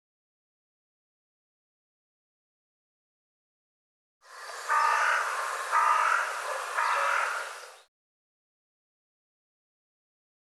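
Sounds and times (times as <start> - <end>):
bird rasping calls: 4.3 - 7.8
continuous hiss: 4.3 - 7.8.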